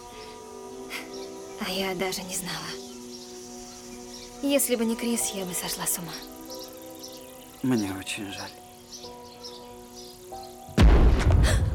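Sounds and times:
speech: 1.6s - 2.8s, 4.4s - 6.4s, 7.6s - 8.6s
gunfire booming from a passing cruiser at sea: 10.8s - 11.7s.

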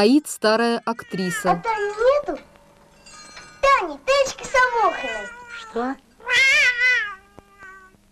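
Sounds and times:
speech: 0.0s - 2.4s, 3.7s - 6.6s
Siamese cat meowing: 0.9s - 2.0s, 4.8s - 8.0s.

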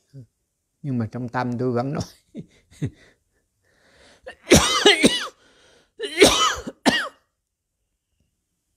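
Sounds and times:
speech: 0.1s - 3.2s
person coughing while chanting: 4.3s - 5.4s, 6.0s - 7.3s.

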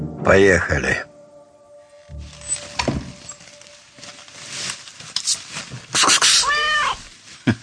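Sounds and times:
speech: 0.2s - 1.1s
rustling and shuffling: 2.1s - 7.6s
hungry cat meowing to be fed: 6.3s - 7.1s.

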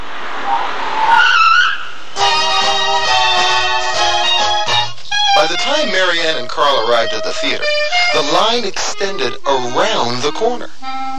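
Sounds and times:
taxi tires squealing while pulling up: 0.0s - 3.6s
steady tonal drone: 0.0s - 6.4s
speech: 6.8s - 10.9s.

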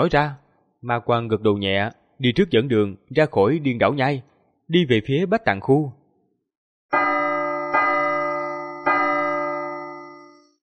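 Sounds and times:
speech: 0.0s - 6.0s
great bells tolling from afar: 7.0s - 10.5s.

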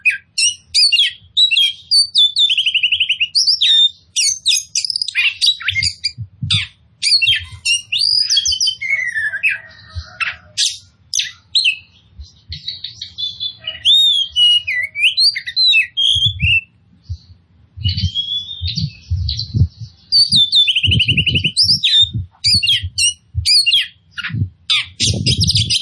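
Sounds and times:
Oriental magpie-robin singing vigorously: 0.0s - 25.8s
faint low thumps: 5.6s - 6.7s, 16.2s - 25.8s.

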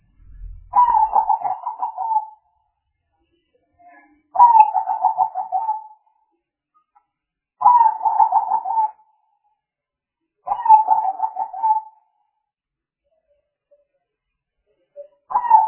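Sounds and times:
spotted dove cooing: 0.7s - 2.4s, 4.4s - 6.0s, 7.6s - 8.9s, 10.5s - 12.0s, 15.3s - 15.6s.

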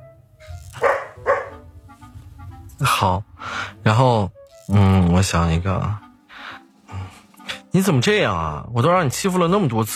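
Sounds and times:
pet dog barking at home: 0.8s - 1.6s
speech: 2.8s - 6.0s, 7.7s - 9.9s.

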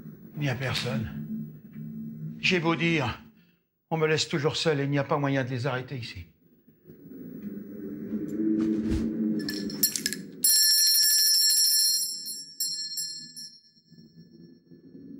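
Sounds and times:
low rumbling: 0.0s - 3.5s, 6.4s - 10.4s
speech: 0.4s - 1.2s, 2.4s - 3.2s, 3.9s - 6.3s
small hand bell ringing: 9.4s - 13.7s.

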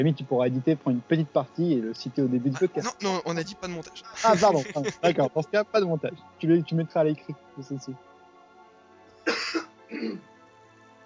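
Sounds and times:
speech: 0.0s - 8.1s, 10.0s - 10.3s
person coughing: 2.6s - 3.0s, 4.0s - 5.3s, 9.3s - 10.2s
laughter: 2.6s - 5.5s.

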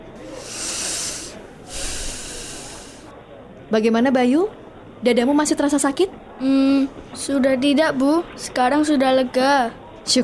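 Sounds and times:
child taking deep breaths in through the nose: 0.2s - 3.1s
speech: 3.7s - 10.2s.

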